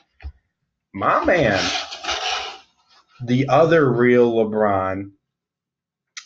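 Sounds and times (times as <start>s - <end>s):
speech: 1.0s - 1.9s, 3.2s - 5.2s
cat pawing and scratching a cardboard shoe box: 1.3s - 2.7s.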